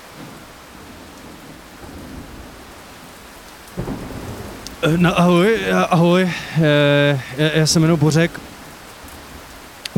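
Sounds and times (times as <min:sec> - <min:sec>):
steady rain pouring: 0:00.0 - 0:09.9
low thunder rumbling: 0:00.2 - 0:09.9
sharp crack of thunder: 0:03.8 - 0:06.5
speech: 0:04.8 - 0:08.5.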